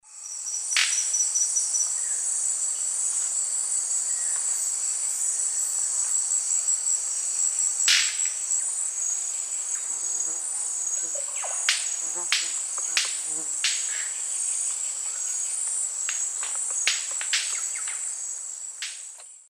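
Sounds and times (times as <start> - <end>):
Manacus manacus wing snaps in the Eastern Lowlands of South America: 7.9 - 8.3, 11.4 - 14.1, 16.1 - 18.0.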